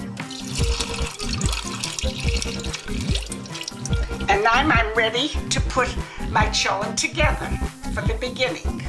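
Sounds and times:
water sloshing in a container as beans are rinsed: 0.2 - 4.3
speech: 4.4 - 8.8.

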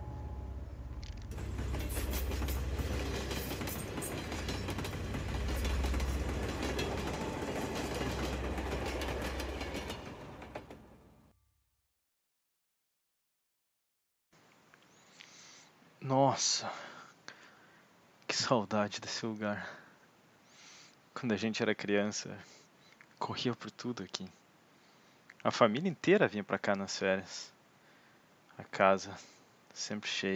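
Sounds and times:
midnight train wheels clacking on the rails: 0.9 - 11.0
speech: 16.1 - 16.9, 18.4 - 19.8, 21.2 - 22.6, 23.2 - 24.4, 25.4 - 27.6, 28.6 - 30.3.

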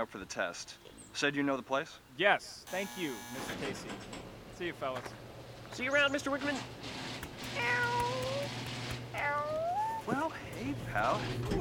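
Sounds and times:
speech: 0.0 - 7.0, 7.6 - 8.1, 10.1 - 11.5
cat meowing: 7.5 - 8.5, 9.2 - 10.0.

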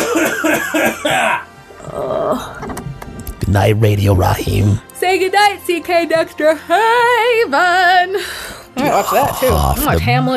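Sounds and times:
harsh rapid coughing: 0.0 - 1.5
speech: 0.7 - 2.8, 3.5 - 10.3.

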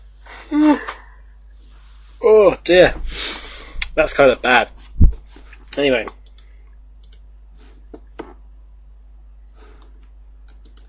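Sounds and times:
short yawn trailing into a breathy exhale: 0.5 - 1.1
speech: 2.4 - 3.4, 4.0 - 4.8, 5.8 - 6.2.

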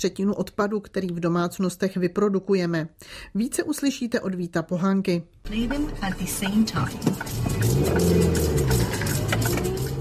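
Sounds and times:
speech: 0.0 - 8.6
car engine humming while turning off a main road onto a local road: 5.4 - 10.0.

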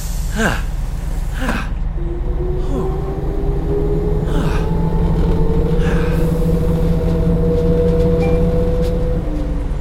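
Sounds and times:
bus air brakes hissing: 0.0 - 1.3
bus engine drone in the rain: 0.0 - 9.7
rising whining bus gear tone: 1.4 - 9.7.

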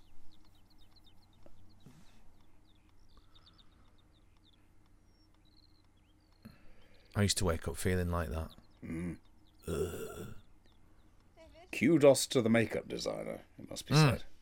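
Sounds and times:
birds singing and chirping: 0.0 - 14.4
speech: 7.2 - 10.3, 11.8 - 14.3.

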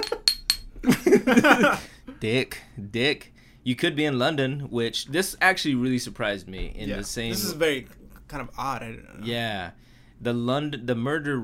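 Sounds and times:
glasses clinking in a toast: 0.0 - 0.7
speech: 1.3 - 11.4.

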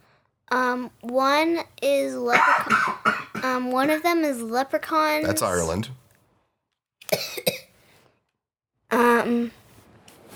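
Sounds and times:
speech: 0.5 - 6.0, 8.9 - 9.6
sharp coughs: 2.3 - 3.6, 7.0 - 7.7.

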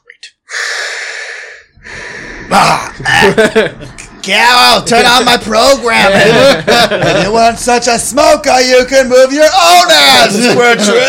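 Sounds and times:
voice imitating heavy breathing: 0.4 - 3.1
laughter: 2.5 - 4.1, 4.8 - 7.9, 10.3 - 11.0
speech: 2.5 - 11.0.

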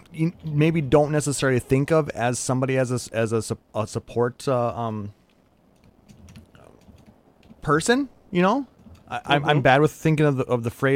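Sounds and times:
low hum: 0.0 - 10.9
speech: 0.1 - 5.2, 7.6 - 10.9
typing on a computer keyboard: 5.8 - 7.6, 8.8 - 9.1.

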